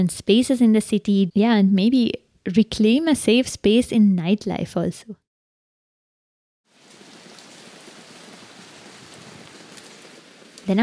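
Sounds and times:
speech: 0.0 - 5.2
heavy rain pouring, drops striking surfaces: 6.7 - 10.8.

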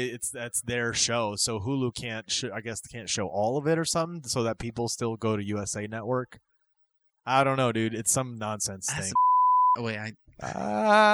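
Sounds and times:
speech: 0.0 - 6.5, 7.2 - 11.1
short flat censor bleep: 9.1 - 9.8
loud drawn-out grunting or bleating vocal sounds: 10.4 - 11.1.

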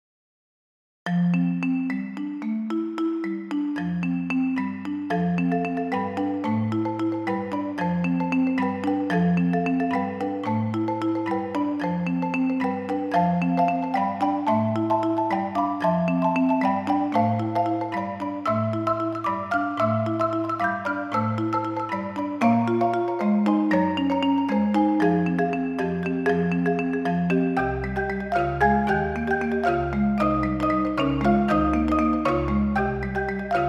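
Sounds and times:
six marimbas playing: 1.1 - 33.6.

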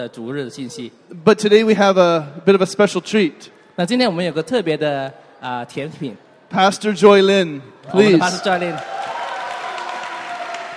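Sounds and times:
speech: 0.0 - 9.0
audience applause: 7.9 - 10.7.

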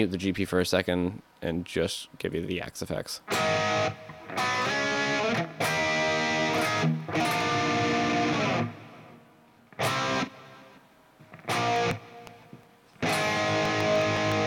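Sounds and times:
speech: 0.0 - 4.9
distorted electric guitar through wide stereo echo effect playing chords and notes: 3.3 - 14.4.

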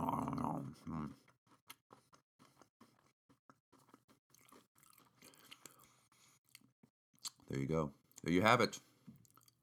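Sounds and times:
crunchy chewing of a cinnamon roll bite: 1.5 - 7.4, 9.2 - 9.6
speech: 7.5 - 8.9.

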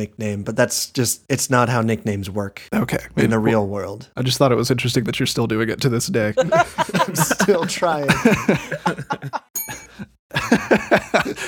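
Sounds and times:
speech: 0.0 - 9.4, 10.7 - 11.4
people laughing: 6.4 - 11.4
single bright bell ring: 9.6 - 10.1.

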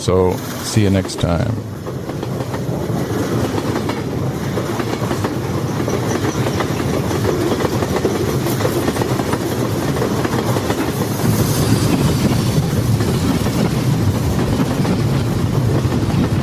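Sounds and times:
speech: 0.0 - 2.6
train on rails clickety-clack: 0.0 - 16.4
faint train wheel squeals: 5.7 - 6.9.

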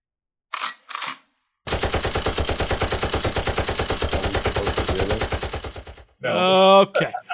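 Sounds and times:
machine gun sound effect: 0.9 - 6.1
speech: 6.2 - 7.2
laughter: 6.3 - 7.3.

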